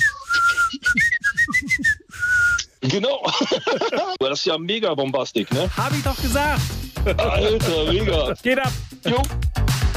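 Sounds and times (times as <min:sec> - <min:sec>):
melodic whistling in a dance song: 0:00.0 - 0:02.7
speech: 0:02.9 - 0:09.5
laughter: 0:03.2 - 0:04.2, 0:07.0 - 0:08.0
thumping dance beat and bass: 0:05.5 - 0:09.9.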